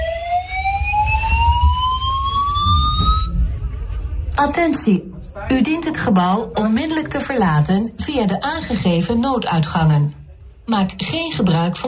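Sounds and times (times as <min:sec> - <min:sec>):
building evacuation alarm electronic tone rising in pitch: 0:00.0 - 0:03.4
speech: 0:04.4 - 0:11.8.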